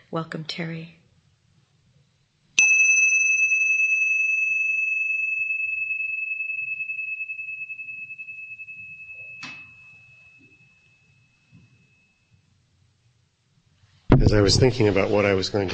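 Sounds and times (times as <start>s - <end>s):
speech: 0.1s - 1.0s, 14.3s - 15.7s
meditation bell struck and ringing: 2.6s - 12.6s.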